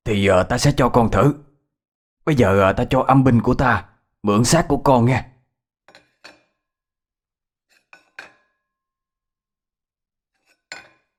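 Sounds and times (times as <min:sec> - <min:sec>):
speech: 0:00.1 - 0:01.4, 0:02.3 - 0:05.3
glasses clinking against a table as they are set down: 0:08.0 - 0:08.6, 0:10.5 - 0:11.1.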